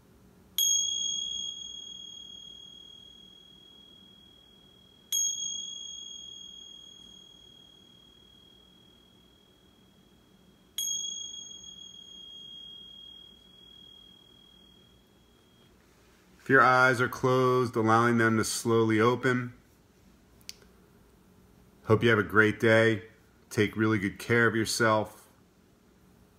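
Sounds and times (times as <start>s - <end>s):
meditation bell ringing: 0.5s - 17.4s
speech: 16.5s - 19.6s, 21.9s - 25.2s.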